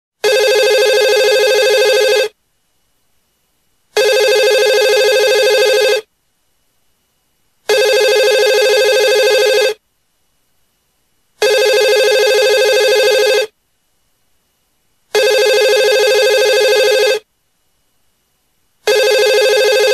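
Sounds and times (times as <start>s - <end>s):
telephone ringing: 0.2s - 2.4s, 4.0s - 6.1s, 7.7s - 9.8s, 11.4s - 13.5s, 15.2s - 17.2s, 18.9s - 19.9s.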